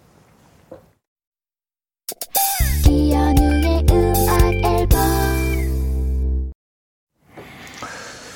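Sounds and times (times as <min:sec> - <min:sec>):
pop song snippet played as quiz hint: 0:02.4 - 0:06.1.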